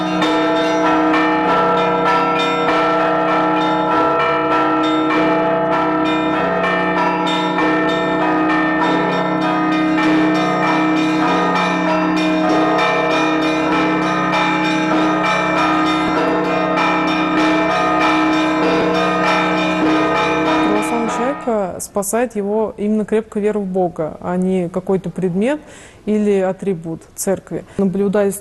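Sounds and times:
full peal of church bells ringing: 0.0s - 21.8s
speech: 22.0s - 28.4s.

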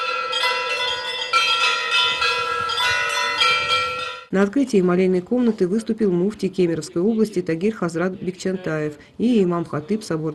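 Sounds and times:
several church bells ringing from a belfry: 0.0s - 4.3s
speech: 4.3s - 10.3s.

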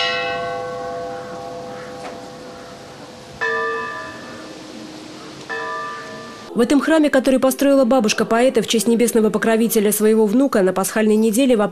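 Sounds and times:
church bell tolling: 0.0s - 6.6s
speech: 6.6s - 11.7s.

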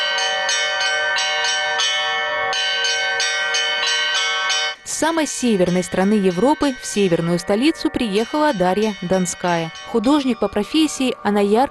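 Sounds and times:
church bells pealing from a belfry: 0.0s - 11.6s
speech: 5.0s - 11.6s.

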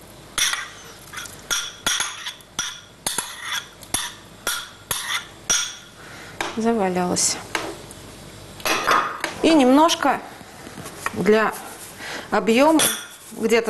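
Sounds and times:
sliced cold cuts knocking and clinking into a pot of solyanka soup: 0.4s - 6.6s, 8.6s - 9.4s, 12.7s - 13.2s
speech: 6.6s - 7.6s, 9.4s - 10.3s, 11.2s - 11.6s, 12.3s - 13.6s.

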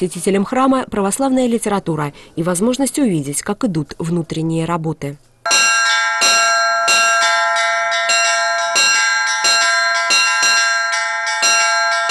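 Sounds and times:
speech: 0.0s - 5.6s
church bells ringing with shimmering harmonic overtones: 5.5s - 12.0s.

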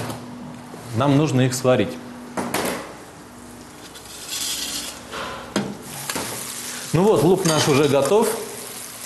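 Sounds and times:
speech: 0.9s - 2.1s, 7.0s - 8.4s
kitchenware scraping and rustling: 3.7s - 6.4s, 7.2s - 8.3s.

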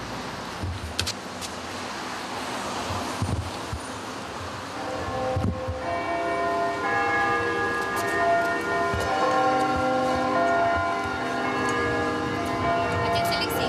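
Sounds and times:
steady outdoor noise: 0.0s - 13.6s
large church bell ringing: 4.8s - 13.6s.

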